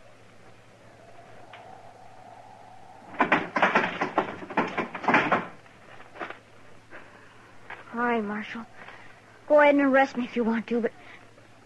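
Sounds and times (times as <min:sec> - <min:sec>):
heavy wooden barn door rattling and scraping open: 0:03.1 - 0:05.6
speech: 0:08.4 - 0:08.9, 0:09.5 - 0:11.0.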